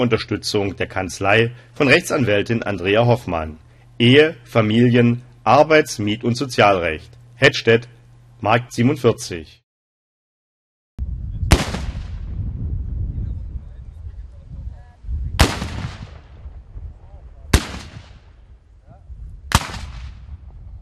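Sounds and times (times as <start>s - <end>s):
speech: 0.0s - 9.6s
black powder salute cannon shots: 11.5s - 12.6s, 15.4s - 16.6s, 17.5s - 18.4s, 19.5s - 20.5s.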